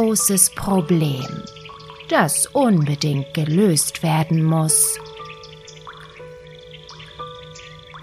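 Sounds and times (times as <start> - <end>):
speech: 0.0 - 5.1
steady sustained musical tone bed: 0.0 - 8.0
water dripping into a house: 0.0 - 8.0.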